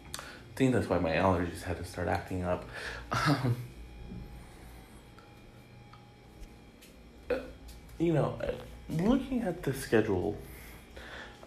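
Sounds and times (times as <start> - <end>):
speech: 0.6 - 3.7, 8.0 - 10.5
person coughing: 3.0 - 3.7.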